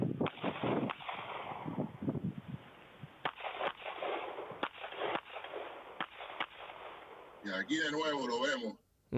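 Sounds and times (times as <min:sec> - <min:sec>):
gunshots fired in a shooting drill: 0:00.2 - 0:01.9, 0:03.2 - 0:07.6
speech: 0:07.5 - 0:09.1.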